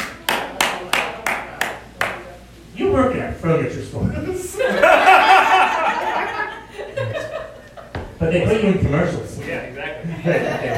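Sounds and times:
people clapping in time: 0.0 - 2.3
speech: 3.0 - 5.0, 8.3 - 9.6, 10.2 - 10.7
laughter: 4.2 - 8.1, 10.0 - 10.7.

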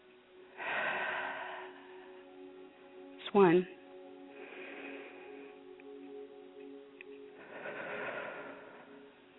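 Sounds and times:
faint steady hum: 0.0 - 9.3
deep breath taken during a breathing exercise: 0.5 - 2.4, 4.3 - 6.2, 7.4 - 9.2
speech: 3.3 - 3.8.

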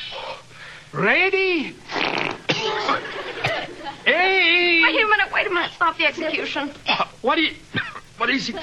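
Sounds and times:
speech: 0.9 - 1.8, 3.9 - 8.6
cartoon fart sound effect, sputtering brassy blast: 1.9 - 3.0
laughter: 2.5 - 4.1, 8.4 - 8.6.

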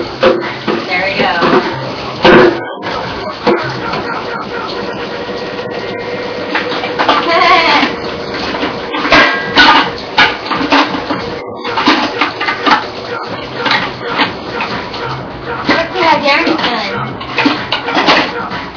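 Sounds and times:
metal pots and pans clanking and knocking in a kitchen: 0.0 - 18.7
running water: 0.0 - 18.7
voices: 0.0 - 18.7.

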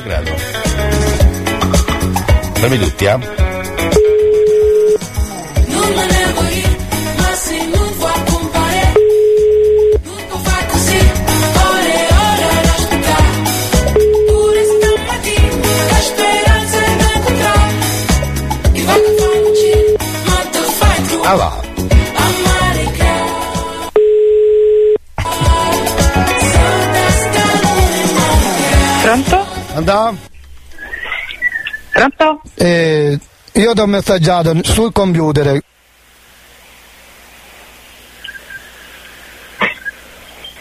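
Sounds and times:
speech: 0.0 - 1.0, 2.6 - 4.0, 29.1 - 30.3, 32.0 - 35.8
loud continuous music: 0.0 - 9.0, 10.0 - 23.9, 25.2 - 30.3
telephone ringback tone while placing a call: 3.9 - 5.6, 9.0 - 10.0, 14.0 - 15.1, 19.0 - 20.0, 24.0 - 25.0.

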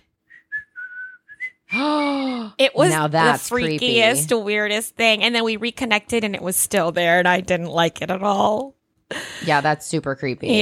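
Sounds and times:
person whistling to imitate a whistle heard on a phone line: 0.2 - 1.9
speech: 2.6 - 10.6.

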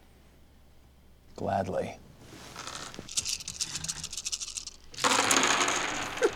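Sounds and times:
speech: 1.4 - 2.1
dice rolling and rattling: 2.6 - 6.3.

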